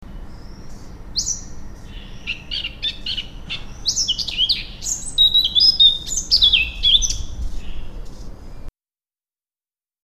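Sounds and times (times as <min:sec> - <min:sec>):
Sylvia atricapilla Eurasian blackcap singing: 0:00.3 - 0:08.0.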